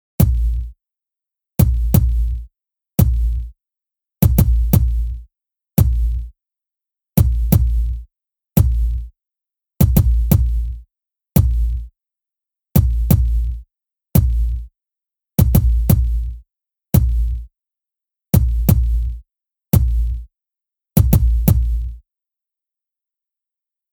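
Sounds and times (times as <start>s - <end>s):
hip hop kick drum: 0.2s - 0.7s, 1.6s - 3.5s, 4.2s - 5.2s, 5.8s - 6.3s, 7.2s - 8.0s, 8.6s - 9.1s, 9.8s - 10.8s, 11.4s - 11.9s, 12.8s - 13.6s, 14.2s - 14.7s, 15.4s - 16.4s, 17.0s - 17.5s, 18.4s - 19.2s, 19.8s - 20.2s, 21.0s - 22.0s.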